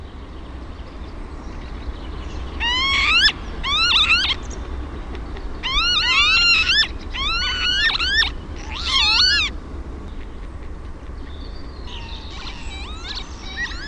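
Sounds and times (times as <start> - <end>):
steady low hum: 0.0 - 13.8
northern lapwing wheezy swooping pee-wit calls: 2.5 - 4.7, 5.5 - 9.6, 11.8 - 13.8.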